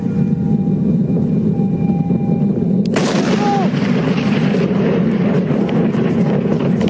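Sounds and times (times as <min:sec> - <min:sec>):
loud low rumble of a meteor over Queensland: 0:00.0 - 0:06.8
meteor exploding with a sharp boom over Queensland: 0:02.0 - 0:06.8.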